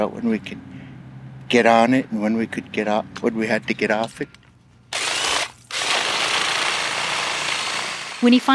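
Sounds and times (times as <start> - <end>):
speech: 0.0 - 0.7, 1.5 - 4.4, 8.2 - 8.5
long spiraling drill bit boring into hard material: 5.0 - 8.5.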